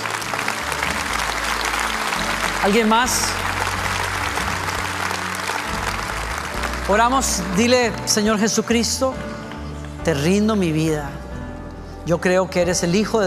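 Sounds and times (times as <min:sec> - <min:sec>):
congregation applauding: 0:00.0 - 0:10.4
speech: 0:02.6 - 0:03.4, 0:06.9 - 0:09.3, 0:10.0 - 0:11.2, 0:12.0 - 0:13.2.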